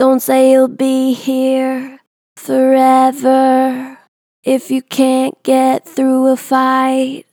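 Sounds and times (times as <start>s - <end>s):
vocals with natural gentle vibrato: 0.0s - 7.3s.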